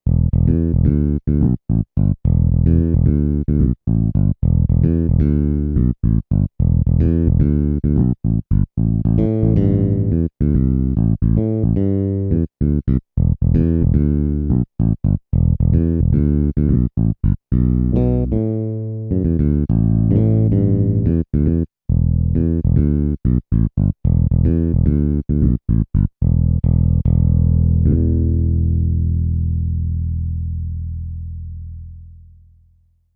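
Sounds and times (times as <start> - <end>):
bass played with a pick: 0.0 - 33.1.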